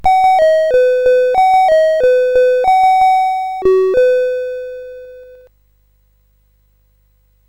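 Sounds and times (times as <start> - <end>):
MOS 8580 SID chip game music: 0.0 - 5.5.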